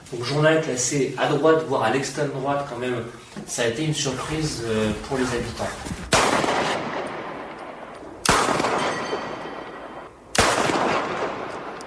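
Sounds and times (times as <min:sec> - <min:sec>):
speech: 0:00.1 - 0:06.0
9 mm gunshots fired at night at the foot of tower blocks: 0:06.0 - 0:11.8.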